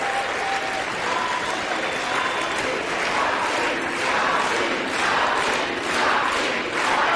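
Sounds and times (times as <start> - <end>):
legislators whooping and shouting in the House chamber: 0.0 - 2.8
legislators clapping in the House chamber during a vote count: 0.0 - 7.1.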